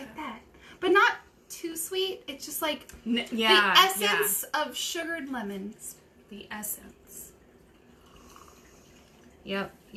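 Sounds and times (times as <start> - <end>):
speech: 1.9 - 7.2, 9.5 - 9.9
wine pouring into a plastic cup: 6.6 - 9.5.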